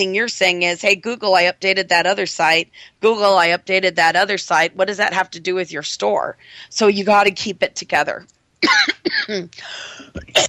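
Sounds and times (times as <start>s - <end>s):
speech: 0.0s - 10.4s
short breaths: 9.6s - 10.2s
harsh rasping coughing fit: 10.0s - 10.4s.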